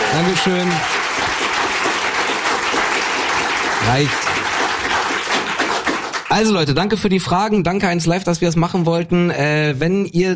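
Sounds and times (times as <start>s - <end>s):
audience applause at a live question-and-answer show: 0.0s - 6.7s
speech: 0.1s - 1.0s, 3.8s - 4.4s, 6.3s - 10.3s.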